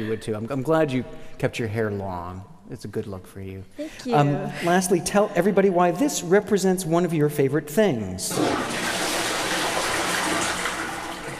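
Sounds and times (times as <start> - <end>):
speech: 0.0 - 8.9
toilet flushing: 8.3 - 11.3.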